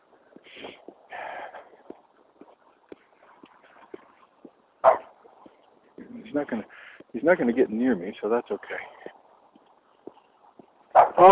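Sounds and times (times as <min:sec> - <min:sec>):
faint rhythmic tapping: 0:00.0 - 0:11.0
dog barking and yelping: 0:04.8 - 0:05.2, 0:10.9 - 0:11.3
speech: 0:06.3 - 0:09.0.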